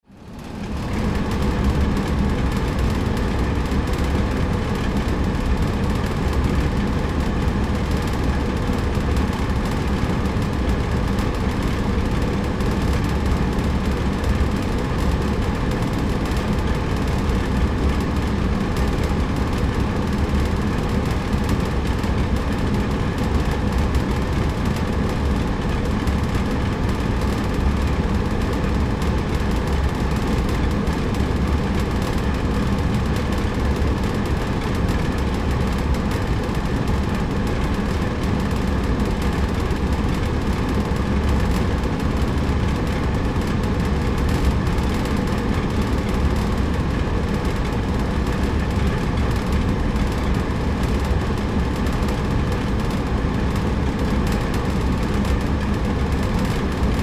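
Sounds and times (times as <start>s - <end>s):
factory air conditioner starting up and shutting down: 0.0s - 57.0s.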